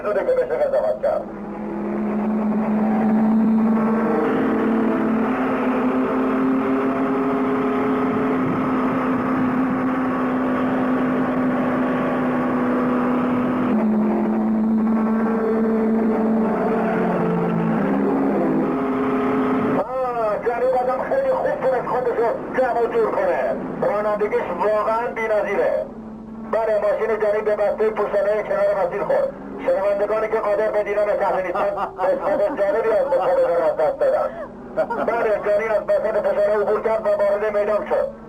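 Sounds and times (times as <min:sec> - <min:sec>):
speech: 0:00.0 - 0:01.6, 0:27.2 - 0:38.2
racing car engine roar while overtaking rivals: 0:00.0 - 0:38.2
laughter: 0:31.4 - 0:35.6.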